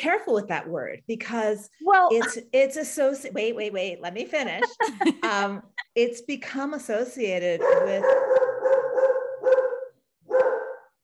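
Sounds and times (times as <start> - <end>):
speech: 0.0 - 8.4
dog barking: 7.6 - 11.0.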